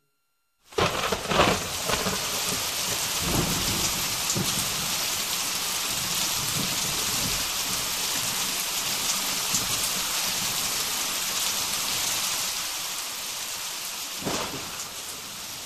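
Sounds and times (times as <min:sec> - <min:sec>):
heavy rain with large drops pattering hard on surfaces in Saigon: 0:00.7 - 0:15.6
low rumble of thunder: 0:00.8 - 0:08.6, 0:14.2 - 0:15.6.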